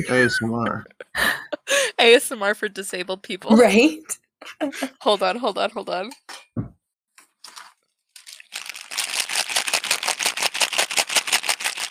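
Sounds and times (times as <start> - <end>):
speech: 0.0 - 1.3, 2.0 - 6.3
laughter: 0.0 - 2.0, 4.4 - 5.2
loose pills rattling in a nearly empty medication container being shaken: 7.4 - 11.8.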